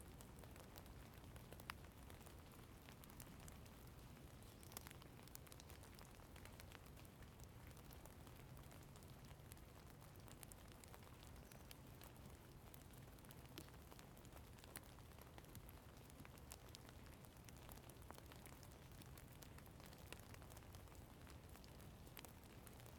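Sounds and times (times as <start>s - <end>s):
light rain outside in woods: 0.0s - 22.9s.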